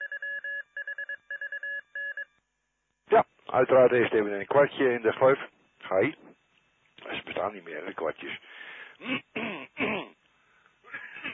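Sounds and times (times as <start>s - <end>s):
speech: 3.1s - 6.2s, 7.4s - 9.4s
quick rough throat-clearing coughs: 9.0s - 10.2s, 10.9s - 11.3s.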